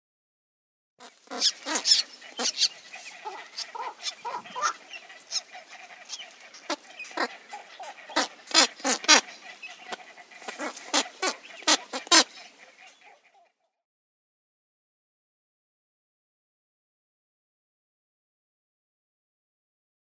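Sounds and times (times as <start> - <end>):
squacco heron calling: 1.0 - 13.7.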